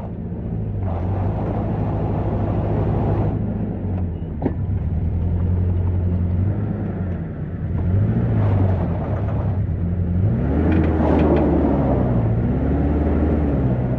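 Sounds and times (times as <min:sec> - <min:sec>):
deep diesel engine rumbling: 0:00.0 - 0:13.9.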